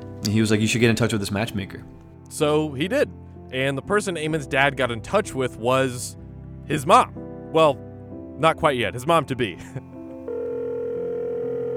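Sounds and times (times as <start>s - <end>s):
speech: 0.2s - 7.8s, 8.4s - 9.8s
electronic telephone tone: 10.3s - 11.7s.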